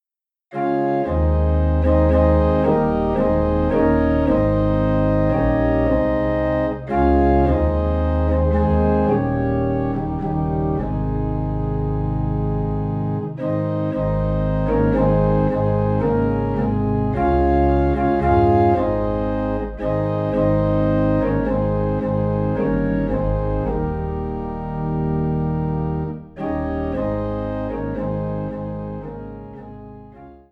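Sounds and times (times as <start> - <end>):
low organ note in A flat: 0.6 - 30.4.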